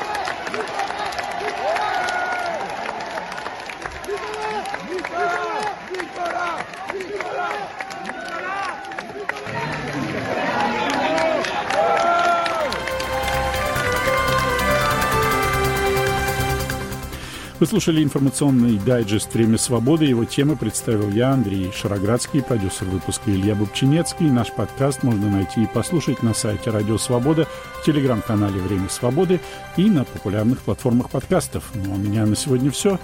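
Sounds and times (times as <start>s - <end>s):
many overlapping shouting voices: 0.0s - 15.2s
large crowd clapping and cheering: 0.0s - 33.0s
music: 12.5s - 33.0s
speech: 17.6s - 33.0s.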